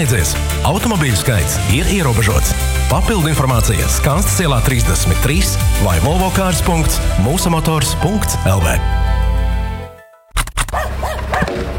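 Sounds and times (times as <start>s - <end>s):
speech: 0.0s - 9.2s
dog barking: 10.7s - 11.6s.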